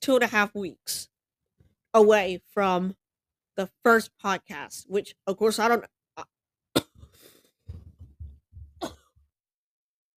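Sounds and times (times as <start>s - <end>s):
speech: 0.0s - 1.1s, 2.0s - 3.0s, 3.6s - 6.3s
rough throat clearing: 6.8s - 7.2s, 8.8s - 9.2s
person coughing: 6.8s - 7.3s, 8.8s - 9.2s.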